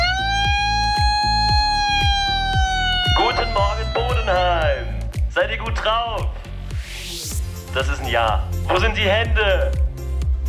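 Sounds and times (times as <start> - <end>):
siren used as a wake-up call in Bodenheim: 0.0 - 5.2
low rhythmic thumps: 0.0 - 10.4
speech: 7.8 - 9.8.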